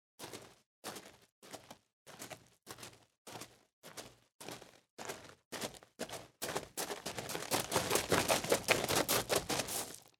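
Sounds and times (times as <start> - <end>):
mountain boots on gravel: 3.3 - 10.1.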